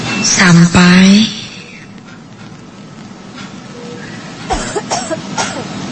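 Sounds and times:
speech: 0:00.2 - 0:01.3
loud coughing: 0:04.5 - 0:05.7.

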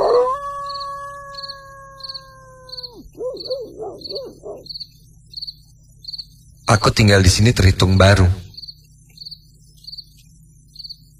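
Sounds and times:
dog howling and barking at night in a housing complex in Bandung: 0:00.0 - 0:04.7
insects chirping at night: 0:00.0 - 0:11.1
low hum: 0:00.0 - 0:11.1
speech: 0:06.7 - 0:08.4.

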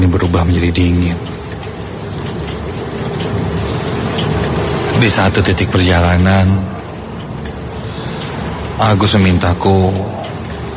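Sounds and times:
heavy rain pouring: 0:00.0 - 0:10.7
speech: 0:00.3 - 0:01.3, 0:05.0 - 0:06.7, 0:08.8 - 0:10.2.

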